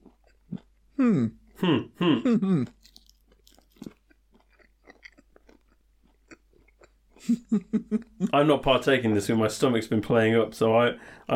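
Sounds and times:
chewing a solid orange chocolate egg: 0.0s - 1.6s, 2.4s - 7.5s
person humming while eating: 1.0s - 2.8s
speech: 1.0s - 2.8s, 7.3s - 11.3s.

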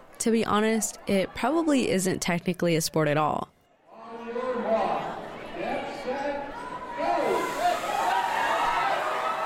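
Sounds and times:
speech: 0.2s - 3.6s
crowd cheering and shouting at a dachshund race: 4.0s - 9.4s.

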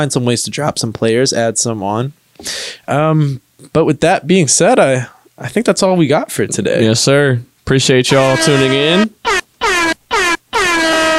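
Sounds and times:
speech: 0.0s - 9.4s
air horn blasts: 8.1s - 11.1s.

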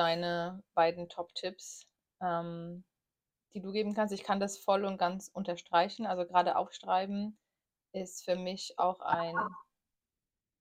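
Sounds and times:
speech: 0.0s - 2.9s, 3.5s - 9.6s
short dog noise: 9.2s - 9.6s.

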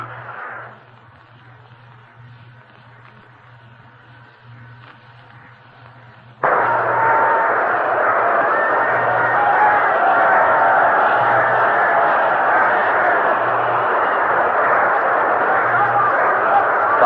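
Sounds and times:
large excited stadium crowd roaring: 6.4s - 17.0s.

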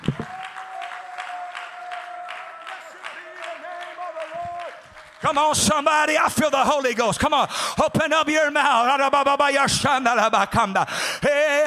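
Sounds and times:
audience clapping along in a steady rhythm: 0.0s - 7.4s
speech: 5.2s - 11.6s.

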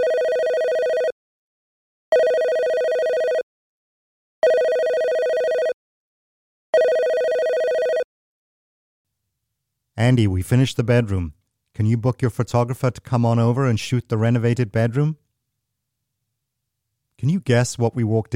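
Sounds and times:
telephone ringing: 0.0s - 1.2s, 2.1s - 3.4s, 4.4s - 5.8s, 6.8s - 8.1s
speech: 10.0s - 15.2s, 17.2s - 18.3s.

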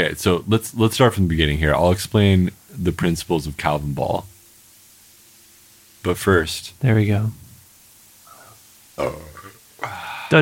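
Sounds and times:
speech: 0.0s - 4.3s, 6.0s - 7.4s, 9.0s - 10.4s
person burping with gurgling tail: 8.3s - 10.4s.

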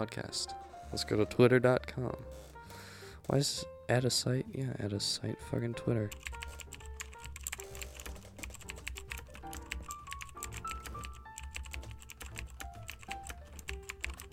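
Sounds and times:
speech: 0.0s - 2.5s, 3.3s - 6.3s
rapid typing on a computer keyboard: 6.1s - 14.3s.

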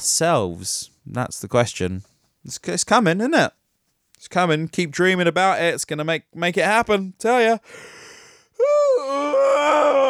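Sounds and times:
speech: 0.0s - 3.6s, 4.2s - 8.8s
big drawn-out human yawn: 8.6s - 10.0s.

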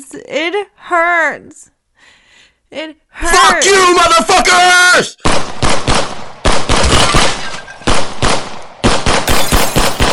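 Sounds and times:
speech: 0.0s - 6.7s
rapid automatic gunfire bursts: 5.3s - 10.1s.

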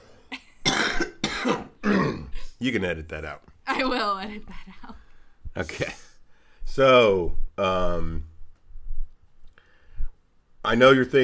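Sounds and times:
person coughing: 0.6s - 2.4s, 5.7s - 6.1s
speech: 1.4s - 2.0s, 2.6s - 5.0s, 5.6s - 6.0s, 6.8s - 8.3s, 10.6s - 11.2s.

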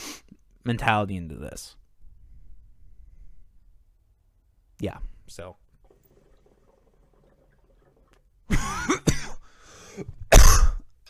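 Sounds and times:
speech: 0.6s - 1.8s, 4.8s - 5.6s, 10.0s - 10.2s
harsh raspy coughing fit: 8.5s - 9.5s, 10.2s - 11.0s
throat clearing: 10.3s - 10.9s.

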